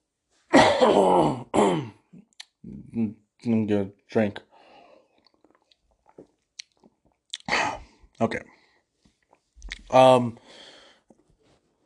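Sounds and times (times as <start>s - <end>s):
man clearing his throat: 0.5s - 2.1s
speech: 0.8s - 2.0s, 2.6s - 4.5s, 8.2s - 8.5s, 9.9s - 10.7s.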